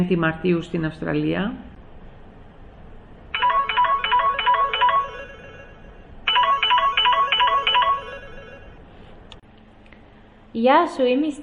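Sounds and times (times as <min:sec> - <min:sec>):
speech: 0:00.0 - 0:01.7, 0:10.6 - 0:11.4
phone ringtone for an incoming call: 0:03.3 - 0:08.8.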